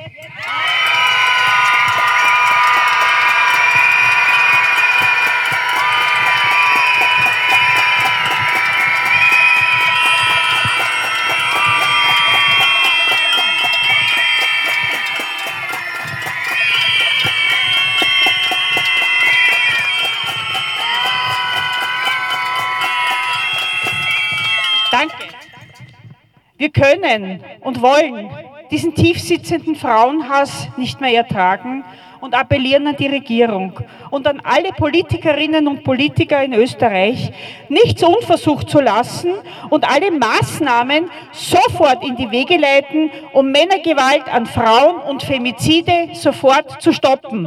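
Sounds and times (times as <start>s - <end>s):
large crowd of protesters in Austria screaming against femicide: 0.2s - 25.9s
speech: 26.8s - 47.4s.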